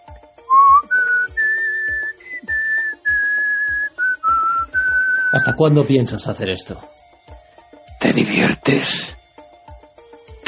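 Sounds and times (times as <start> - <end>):
person whistling a slow melody: 0.4 - 5.6
steady thumping beat: 0.5 - 5.6
speech: 5.4 - 7.1, 8.3 - 9.1.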